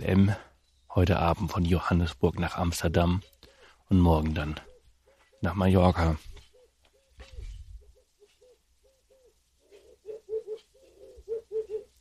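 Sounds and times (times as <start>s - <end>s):
speech: 0.0s - 3.3s, 3.9s - 4.7s, 5.4s - 6.4s
faint noise: 0.0s - 11.9s
pigeon or dove cooing: 4.6s - 5.4s, 6.3s - 11.9s.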